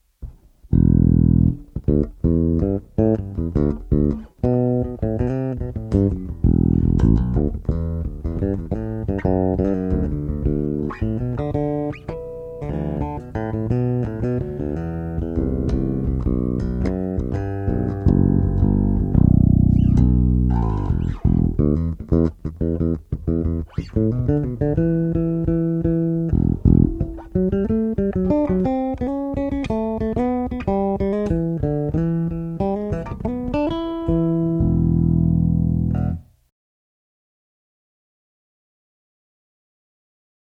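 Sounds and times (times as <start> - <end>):
bass: 0.0 - 36.5.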